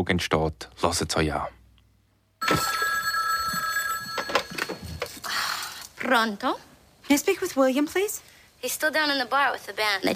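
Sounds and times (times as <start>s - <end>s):
speech: 0.0s - 1.6s, 2.5s - 2.8s, 6.0s - 10.1s
telephone ringing electronically in a hotel room: 2.4s - 5.2s.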